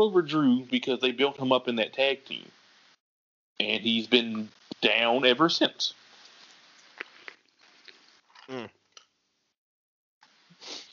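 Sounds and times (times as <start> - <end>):
speech: 0.0 - 2.6, 3.6 - 6.0, 8.5 - 8.8
sipping a drink: 6.2 - 9.1.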